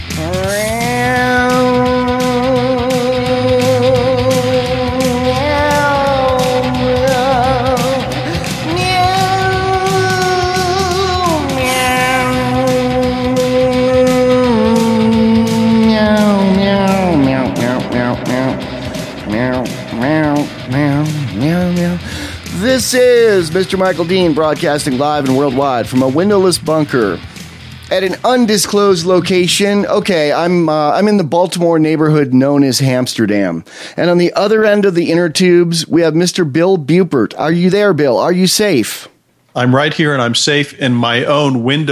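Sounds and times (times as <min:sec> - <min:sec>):
people imitating cat meows: 0:00.0 - 0:22.1
speech: 0:23.5 - 0:27.3, 0:27.9 - 0:41.8.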